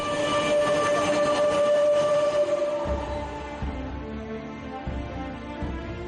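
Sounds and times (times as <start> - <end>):
metro train running with mechanical rumble and whine: 0.0 - 4.2.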